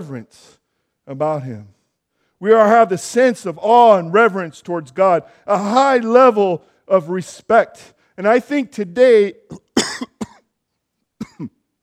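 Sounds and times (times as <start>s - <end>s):
speech: 0.0s - 1.8s, 2.4s - 10.2s
person coughing: 9.5s - 10.5s, 11.2s - 11.6s.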